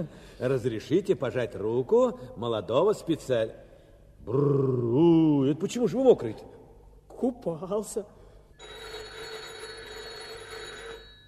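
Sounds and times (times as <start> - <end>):
speech: 0.0 - 6.6, 7.2 - 8.9
telephone electric bell ringing at a factory: 8.6 - 11.2.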